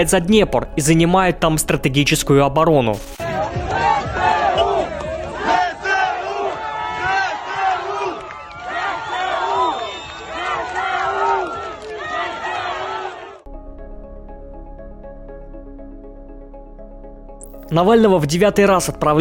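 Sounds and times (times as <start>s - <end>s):
speech: 0.0s - 3.6s, 17.7s - 19.2s
residents of Kherson cheering and shouting jubilantly: 3.2s - 13.5s.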